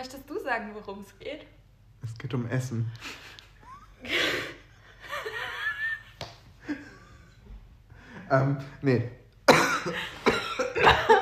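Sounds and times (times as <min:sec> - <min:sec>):
speech: 0:00.0 - 0:03.4, 0:04.0 - 0:04.6, 0:08.3 - 0:09.2, 0:09.8 - 0:10.2
laughter: 0:03.0 - 0:07.5, 0:09.8 - 0:11.2
harsh dry coughs: 0:09.4 - 0:11.0.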